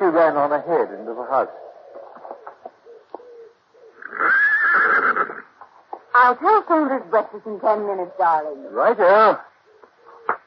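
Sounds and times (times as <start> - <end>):
speech: 0.2 - 1.8, 6.2 - 9.5
horse whinnying: 3.9 - 5.5.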